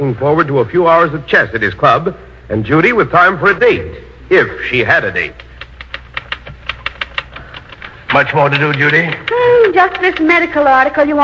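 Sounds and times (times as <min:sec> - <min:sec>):
speech: 0:00.0 - 0:05.5, 0:08.2 - 0:11.2
faint low hum: 0:00.0 - 0:11.2
typewriter keys clacking while typing a medical article: 0:05.4 - 0:10.4.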